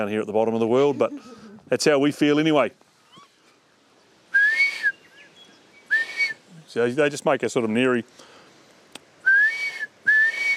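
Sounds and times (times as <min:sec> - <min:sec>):
speech: 0:00.0 - 0:02.8, 0:06.8 - 0:08.3
person whistling an imitation of a blue duck call: 0:04.3 - 0:05.1, 0:05.9 - 0:06.4, 0:09.2 - 0:10.5.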